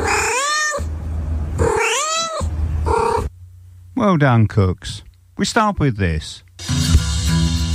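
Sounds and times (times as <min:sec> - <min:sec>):
cat meowing with long wailing calls: 0:00.0 - 0:00.9, 0:01.6 - 0:03.3
speech: 0:04.0 - 0:07.6.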